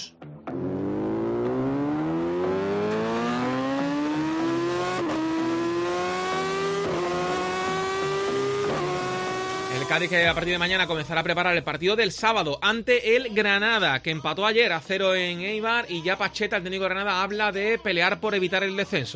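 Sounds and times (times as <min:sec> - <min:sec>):
Yamaha motorcycle engine revving: 0:00.5 - 0:10.2
speech: 0:10.0 - 0:19.1.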